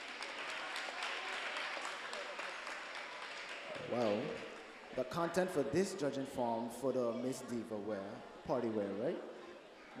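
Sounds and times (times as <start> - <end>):
audience applause for contestants: 0.0 - 5.4
speech: 3.9 - 9.3.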